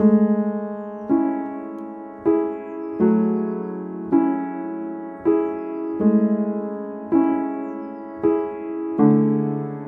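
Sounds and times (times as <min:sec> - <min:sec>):
dry piano chords: 0:00.0 - 0:09.8.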